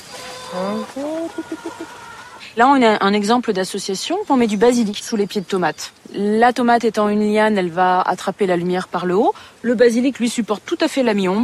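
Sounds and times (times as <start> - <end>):
chickens clucking and squawking: 0.0 - 2.6
speech: 0.5 - 11.4.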